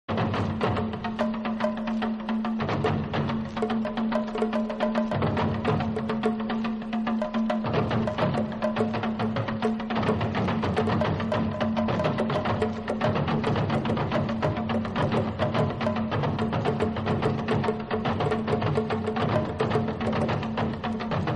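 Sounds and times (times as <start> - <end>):
african rhythms ringtone: 0.2 - 21.3.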